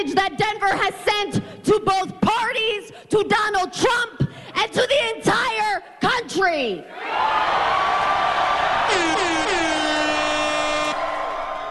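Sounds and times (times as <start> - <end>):
speech: 0.0 - 5.8, 6.4 - 7.8
crowd of supporters cheering at a rally: 6.9 - 11.6
air horn blown at a rally: 8.9 - 11.4.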